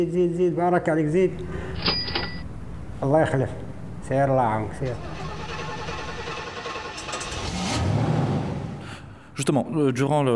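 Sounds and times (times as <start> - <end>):
speech: 0.0 - 2.1, 3.0 - 5.1, 9.4 - 10.3
car engine humming and revving while maneuvering into a parking spot: 1.3 - 8.9.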